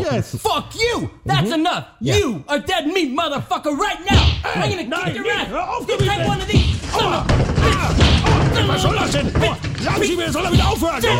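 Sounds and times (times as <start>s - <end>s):
speech: 0.1s - 11.1s
people shouting: 4.1s - 11.1s
punches thudding on a body in a scuffle: 6.0s - 9.6s
strained grunts: 6.9s - 11.1s.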